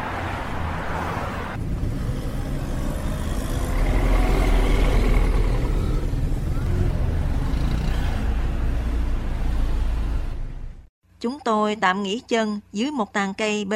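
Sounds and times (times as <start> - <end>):
busy highway traffic with cars and trucks passing: 0.0 - 10.9
speech: 11.2 - 13.7.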